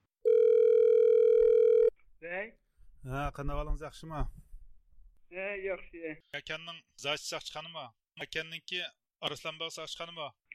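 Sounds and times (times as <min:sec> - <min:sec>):
telephone ringing tone when calling a police station: 0:00.2 - 0:01.9
speech: 0:02.4 - 0:04.4, 0:05.3 - 0:10.4.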